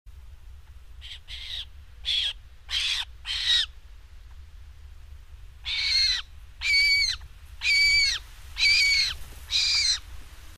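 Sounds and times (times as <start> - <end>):
Montagu's harrier calling: 1.0 - 3.7, 5.6 - 10.0.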